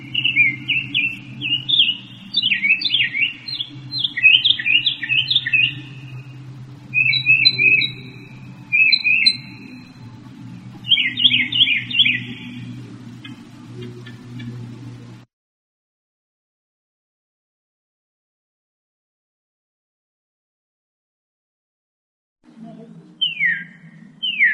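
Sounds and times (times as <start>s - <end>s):
Northern mockingbird singing: 0.0s - 15.0s, 22.7s - 24.5s
low hum: 0.0s - 15.3s.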